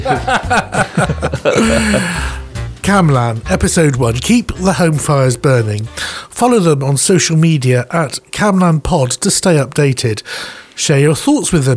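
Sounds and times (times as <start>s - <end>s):
chuckle-like sounds: 0.0s - 2.5s
speech: 0.0s - 11.7s
person clearing throat: 1.5s - 2.4s.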